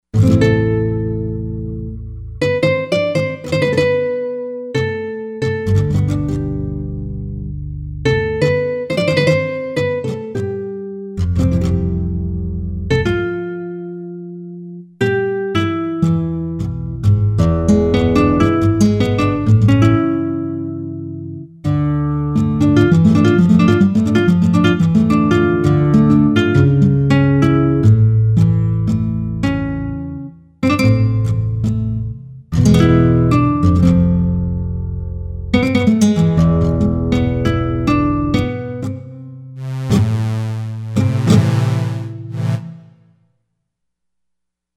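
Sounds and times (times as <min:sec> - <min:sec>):
flamenco guitar: 0:00.2 - 0:42.4.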